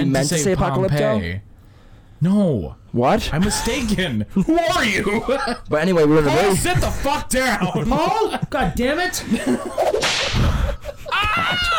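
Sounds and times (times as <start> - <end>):
speech: 0.0 - 1.5, 2.2 - 10.6
laughter: 3.7 - 5.7, 6.4 - 11.7
whip cracking with a whooshing swish: 10.0 - 10.5
strained harmonic vocalizing like a yelp: 11.1 - 11.7.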